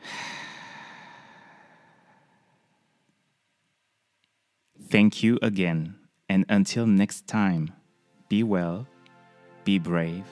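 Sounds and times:
deep exhale in an inhale-and-exhale exercise: 0.0 - 2.8
speech: 4.9 - 8.9, 9.6 - 10.2.

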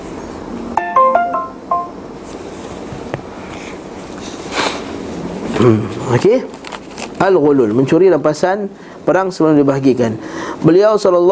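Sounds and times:
phone ringtone of bright electronic tones: 0.8 - 2.0
speech: 5.6 - 6.6, 7.2 - 11.3.

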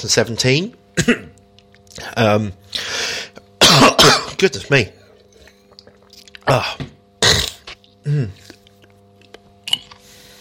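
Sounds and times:
speech: 0.0 - 1.3, 2.0 - 3.0, 4.0 - 5.0, 6.5 - 6.9, 8.0 - 8.4
harsh coughs: 1.0 - 1.4, 3.6 - 4.4, 6.6 - 8.4
throat clearing: 1.0 - 1.4, 3.6 - 4.4, 6.5 - 8.6.

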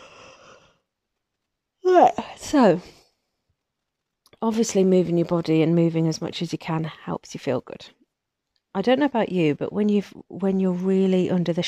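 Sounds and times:
soft breathy drawn-out exhale: 0.0 - 0.8
speech: 2.1 - 3.0, 4.4 - 8.0, 8.7 - 11.6.

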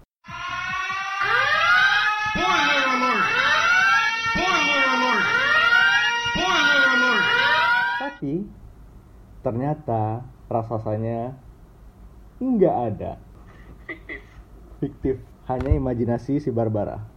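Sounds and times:
electronic warning tone marking a spoiler: 0.3 - 8.2
speech: 8.2 - 8.7, 9.4 - 11.4, 12.4 - 13.3, 14.8 - 17.1.

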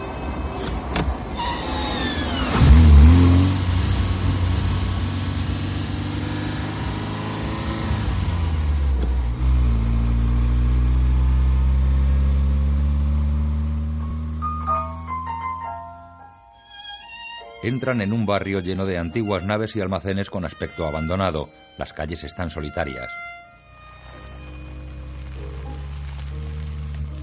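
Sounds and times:
car engine pulling away after shifting into second gear: 0.4 - 15.4, 23.6 - 27.2
speech: 17.7 - 23.4.

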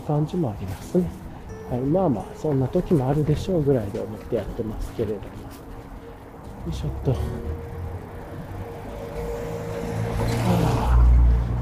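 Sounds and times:
steady outdoor noise: 0.0 - 11.6
speech: 0.1 - 5.6, 6.6 - 7.7
car with a very low ride height driving past: 5.8 - 11.6.

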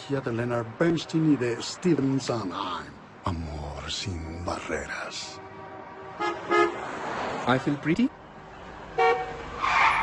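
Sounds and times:
street traffic noise: 0.0 - 10.0
speech: 0.1 - 5.4, 7.4 - 8.2
car horns honking in short bursts: 5.4 - 7.2, 8.9 - 10.0.

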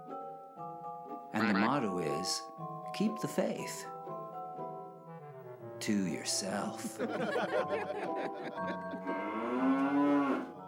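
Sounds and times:
speech: 1.3 - 4.0, 5.8 - 10.4
laughter: 1.4 - 1.8, 6.8 - 9.2
cow mooing: 9.0 - 10.6.

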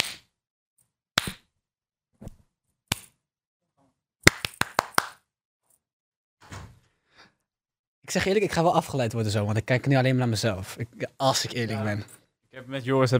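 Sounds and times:
sharp hand claps: 4.2 - 5.3
speech: 8.1 - 13.1.

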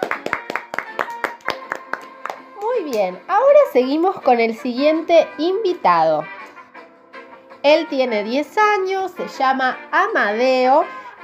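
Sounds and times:
small group clapping hands: 0.0 - 3.2
speech: 2.9 - 6.4, 7.6 - 11.2.

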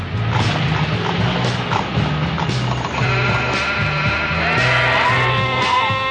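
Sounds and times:
low rumbling: 0.0 - 6.0
flock of sheep bleating: 2.9 - 6.0.

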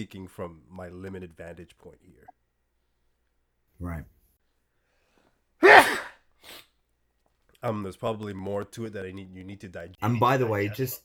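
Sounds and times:
speech: 0.0 - 2.4, 3.8 - 4.2, 7.6 - 11.0
faint breath: 4.8 - 5.4
man sneezing: 5.6 - 6.6.

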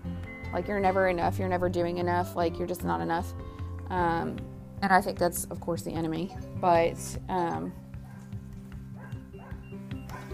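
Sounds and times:
speech: 0.5 - 7.8
dogs barking and yipping: 7.8 - 10.3.

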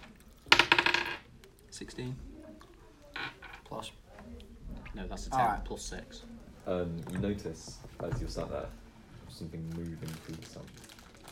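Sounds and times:
dice rolled across a tabletop for a perception check: 0.4 - 1.3
speech: 1.8 - 2.3, 3.7 - 10.9.

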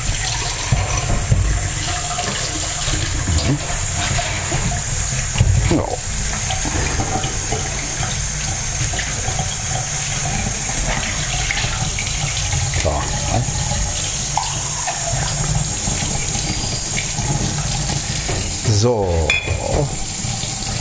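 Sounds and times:
running tap water splashing under a kitchen faucet: 0.0 - 20.7
speech: 5.7 - 6.0
mug and cup clinking while rinsed: 19.3 - 20.0.

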